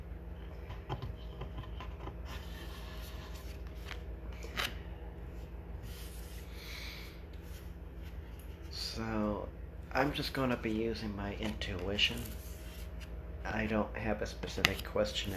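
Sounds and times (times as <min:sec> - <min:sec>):
quiet steady low hum: 0:00.0 - 0:15.3
tarot cards handled and turned over, rubbing and sliding: 0:02.3 - 0:04.8, 0:05.4 - 0:06.5, 0:11.5 - 0:13.2, 0:14.6 - 0:15.3
speech: 0:09.0 - 0:12.4, 0:13.5 - 0:15.3.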